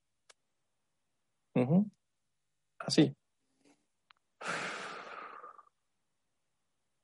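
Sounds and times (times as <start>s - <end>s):
speech: 1.6s - 2.0s, 2.8s - 3.2s
slow soft breathing for relaxation: 4.4s - 5.7s.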